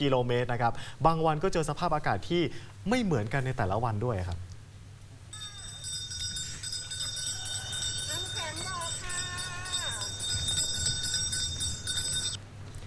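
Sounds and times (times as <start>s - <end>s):
speech: 0.0s - 4.5s
hand bell jingling from ice dessert cart: 5.3s - 12.4s
low rumble of street traffic: 5.3s - 12.8s.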